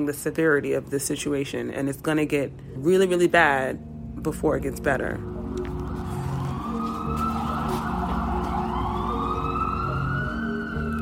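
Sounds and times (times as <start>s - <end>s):
speech: 0.0s - 5.3s
low rumble of city traffic: 0.0s - 11.0s
ambulance siren wailing: 5.4s - 11.0s.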